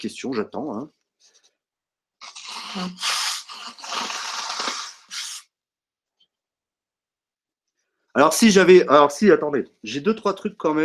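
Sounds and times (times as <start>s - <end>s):
speech: 0.0s - 1.0s, 2.8s - 3.1s, 8.2s - 10.8s
person blowing nose: 2.2s - 5.6s.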